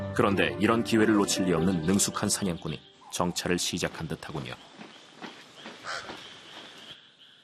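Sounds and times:
speech: 0.2 - 4.7
pied crow cawing harshly: 5.7 - 7.4.

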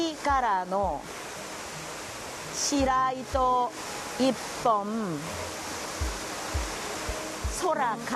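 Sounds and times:
waterfall pouring in the rain near Mount Fuji: 0.0 - 8.1
speech: 0.2 - 1.2, 2.5 - 6.1, 7.6 - 8.1
soft low thumps: 6.0 - 7.7.

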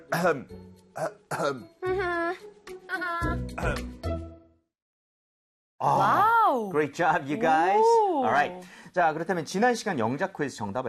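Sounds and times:
speech: 0.1 - 4.1, 5.8 - 10.8
throat clearing: 1.0 - 1.6, 3.6 - 3.9.

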